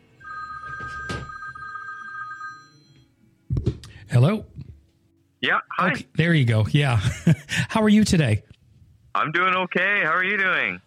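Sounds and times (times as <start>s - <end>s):
telephone ringing with a steady electronic tone: 0.2s - 3.1s
speech: 4.1s - 4.6s, 5.5s - 8.5s, 9.2s - 10.8s.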